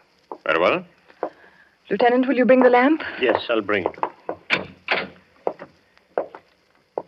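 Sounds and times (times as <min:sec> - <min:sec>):
speech: 0:00.5 - 0:01.0, 0:01.9 - 0:04.0
heavy wooden cellar door creaking and clunking as it swings: 0:03.8 - 0:05.7
heavy wooden cellar door opened with knocking thuds: 0:03.9 - 0:05.6.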